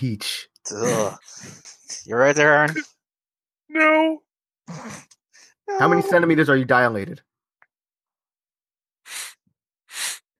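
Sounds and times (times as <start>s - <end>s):
speech: 0.0s - 2.9s, 3.7s - 5.1s, 5.7s - 7.3s
man breathing heavily: 9.1s - 10.3s.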